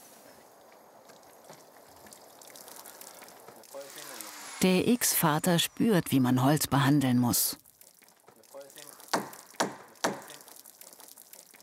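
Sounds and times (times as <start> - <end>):
water run and splashed over a cedar wood plank for boatbuilding: 0.6 - 4.3, 7.6 - 11.6
speech: 3.8 - 7.6.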